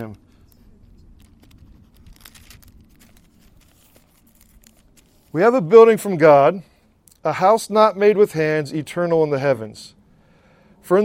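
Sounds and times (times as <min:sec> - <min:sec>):
papers rustling and crinkling while being handled: 0:00.0 - 0:05.5
speech: 0:05.3 - 0:10.0, 0:10.8 - 0:11.0.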